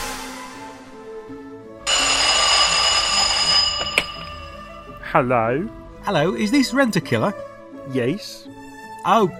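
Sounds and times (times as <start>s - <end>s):
telephone ringing on an outgoing call: 1.9s - 5.2s
speech: 5.1s - 9.3s.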